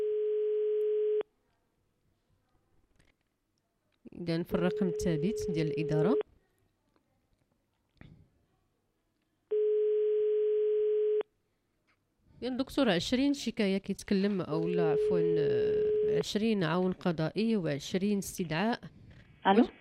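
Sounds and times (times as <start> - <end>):
telephone ringing tone while calling: 0.0 - 1.2, 4.6 - 6.2, 9.5 - 11.3, 14.7 - 16.3
speech: 4.2 - 6.3, 12.5 - 19.8.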